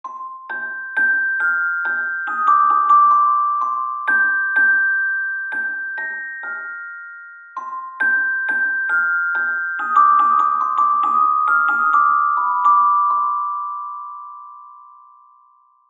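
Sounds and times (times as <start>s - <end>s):
celesta: 0.0s - 15.8s.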